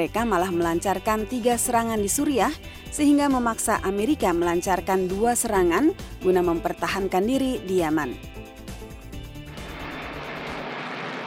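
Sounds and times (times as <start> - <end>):
speech: 0.0 - 8.3
B-1 military jet bomber roaring: 9.5 - 11.2.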